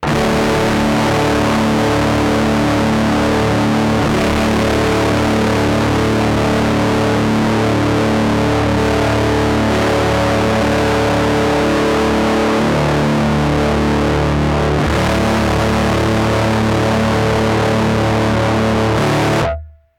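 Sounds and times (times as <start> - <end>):
guitar through Rat distortion and Moogerphaser: 0.0 - 19.9.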